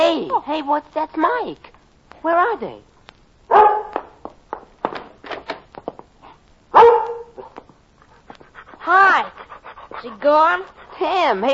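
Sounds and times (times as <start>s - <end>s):
speech: 0.0s - 2.9s, 10.0s - 11.5s
dog barking: 3.5s - 4.0s, 6.7s - 7.6s.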